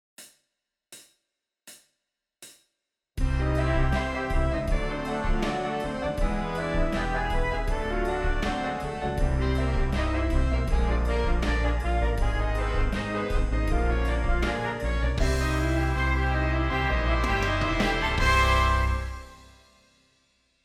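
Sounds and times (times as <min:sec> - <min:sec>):
horns playing a whole tone scale in fifths: 0:03.2 - 0:19.7.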